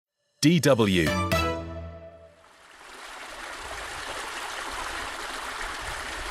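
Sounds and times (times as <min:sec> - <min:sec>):
speech: 0:00.4 - 0:01.3
brief musical tone: 0:00.4 - 0:02.4
mountain stream flowing in Switzerland: 0:02.3 - 0:06.2.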